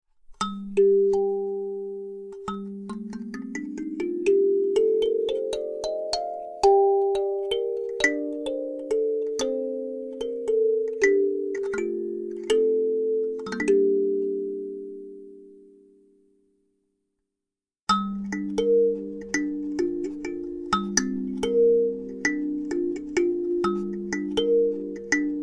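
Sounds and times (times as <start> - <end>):
alto kalimba in G minor: 0.4 - 15.7, 17.9 - 25.4.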